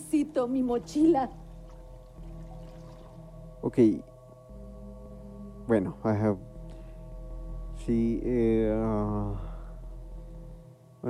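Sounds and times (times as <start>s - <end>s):
speech: 0.2s - 1.4s, 3.6s - 4.1s, 5.7s - 6.5s, 7.8s - 9.5s
faint steady stream of liquid pouring with soft splashing: 1.5s - 3.2s.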